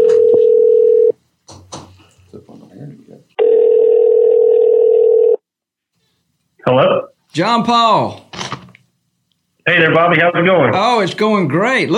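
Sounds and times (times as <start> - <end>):
landline telephone dial tone: 0.0 - 1.1, 3.4 - 5.4
speech: 7.4 - 8.2, 9.6 - 11.9.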